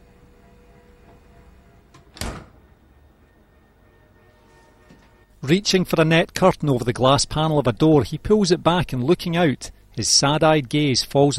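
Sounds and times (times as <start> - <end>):
low hum: 0.0 - 11.3
fridge stocked with bottles being opened: 1.9 - 2.7
speech: 5.4 - 11.3.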